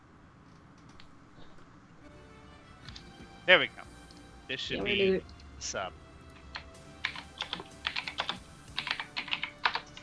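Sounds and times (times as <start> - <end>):
speech: 3.5 - 3.9, 4.5 - 6.0
loud clicking of computer keyboard keys: 6.2 - 10.0.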